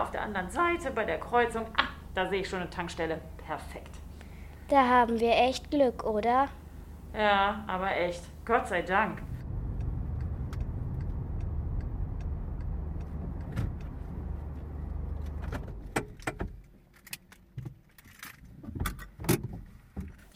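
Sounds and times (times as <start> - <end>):
speech: 0.0 - 4.1, 4.7 - 9.3
low road rumble: 8.5 - 16.8
car humming along after leaving the motorway: 9.2 - 16.4.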